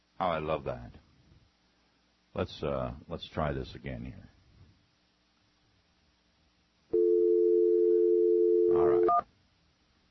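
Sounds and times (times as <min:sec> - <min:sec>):
speech: 0:00.2 - 0:01.0, 0:02.4 - 0:04.3, 0:08.7 - 0:09.3
telephone dial tone from X-Lite softphone call attempt: 0:07.0 - 0:09.2.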